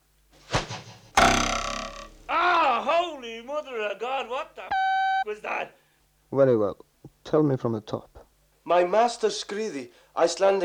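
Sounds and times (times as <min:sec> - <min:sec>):
spear thudding into a wooden door: 0:01.2 - 0:02.2
speech: 0:03.6 - 0:08.1, 0:08.7 - 0:10.6.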